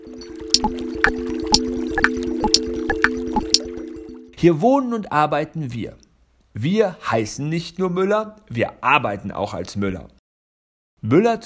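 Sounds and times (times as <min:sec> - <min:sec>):
wash of moving water: 0:00.0 - 0:04.4
speech: 0:04.4 - 0:06.0, 0:06.6 - 0:10.2, 0:11.0 - 0:11.4.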